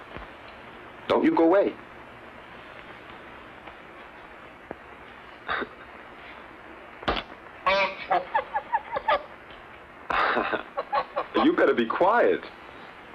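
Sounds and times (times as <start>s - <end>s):
steady hiss: 0.0s - 13.1s
speech: 1.1s - 1.9s, 11.8s - 12.6s
bird honking with nasal stuttering calls: 7.7s - 9.2s.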